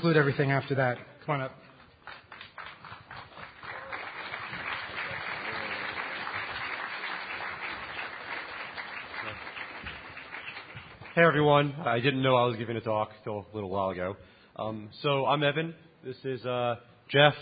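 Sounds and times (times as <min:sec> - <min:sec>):
speech: 0:00.0 - 0:01.7, 0:11.2 - 0:17.4
mid-sized audience applauding in a room: 0:02.0 - 0:11.4.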